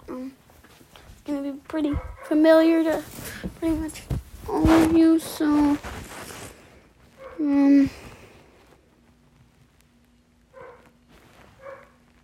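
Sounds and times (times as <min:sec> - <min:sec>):
low steady hum: 0:00.0 - 0:12.2
speech: 0:01.7 - 0:05.9, 0:07.4 - 0:08.0
dog barking: 0:01.9 - 0:02.4, 0:07.2 - 0:07.4, 0:10.5 - 0:11.0, 0:11.6 - 0:12.0.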